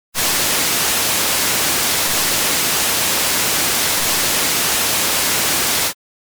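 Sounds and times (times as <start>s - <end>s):
drums: 0.1s - 6.0s.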